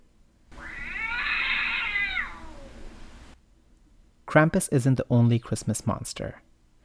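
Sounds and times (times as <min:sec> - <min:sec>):
cat yowling and caterwauling: 0:00.5 - 0:02.9
speech: 0:04.3 - 0:06.5.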